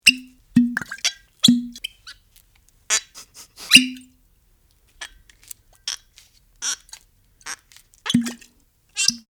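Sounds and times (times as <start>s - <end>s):
various corks popping out of wine bottles: 0.0s - 2.2s, 3.0s - 4.2s, 6.6s - 9.2s
cork squeaks: 0.0s - 9.2s.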